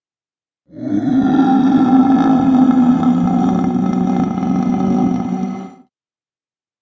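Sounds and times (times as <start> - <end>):
loud eerie moaning voice from behind a door: 0.7 - 5.9.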